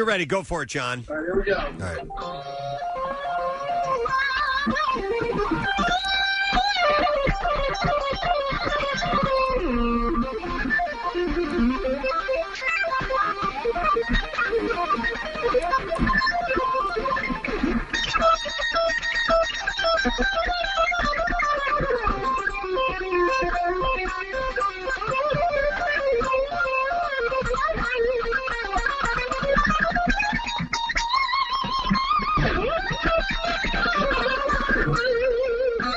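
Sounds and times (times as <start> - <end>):
speech: 0.0 - 6.0, 20.0 - 20.6
guitar playing fast runs heard over a phone line: 1.1 - 35.9.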